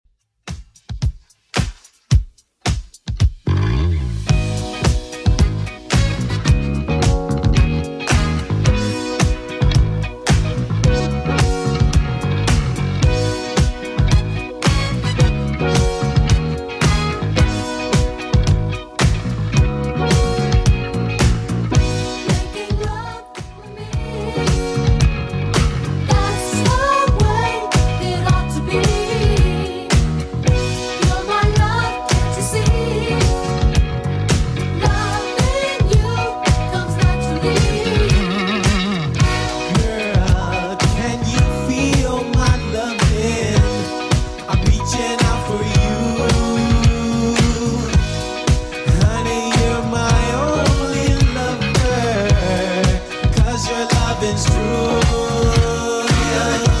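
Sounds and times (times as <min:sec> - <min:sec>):
80s Redrum drum machine beat at 110 bpm: 0:00.5 - 0:56.7.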